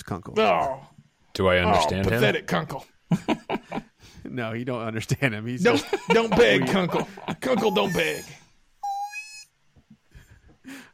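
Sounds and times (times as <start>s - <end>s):
speech: 0.1s - 8.4s
laughter: 5.6s - 8.4s
person imitating a bat squeak: 7.6s - 9.6s.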